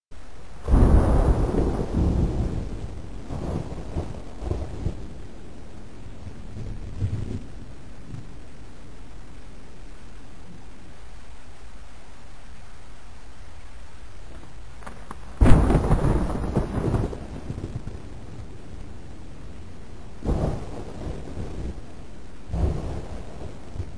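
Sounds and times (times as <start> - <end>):
storm: 0.2 - 9.7, 14.3 - 23.9.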